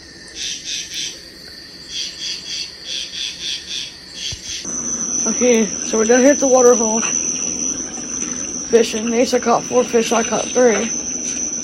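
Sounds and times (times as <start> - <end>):
evening chorus of frogs croaking at a waterhole: 0.0 - 11.6
speech: 5.2 - 7.2, 8.7 - 11.0.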